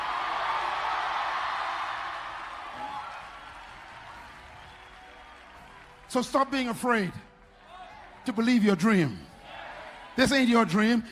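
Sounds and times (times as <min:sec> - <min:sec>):
large crowd clapping: 0:00.0 - 0:08.6
speech: 0:06.1 - 0:07.3, 0:08.2 - 0:09.3, 0:10.2 - 0:11.0.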